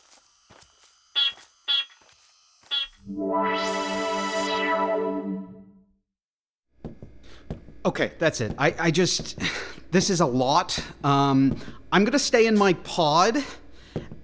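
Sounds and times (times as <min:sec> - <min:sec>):
short bright electronic beeps: 0:02.7 - 0:05.3
speech: 0:03.1 - 0:03.8, 0:07.8 - 0:13.6.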